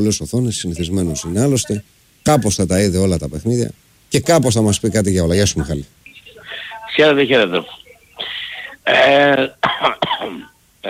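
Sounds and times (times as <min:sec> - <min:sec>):
speech: 0:00.0 - 0:06.0, 0:07.0 - 0:07.8, 0:08.8 - 0:10.8
person coughing: 0:08.2 - 0:10.5
throat clearing: 0:09.0 - 0:10.5.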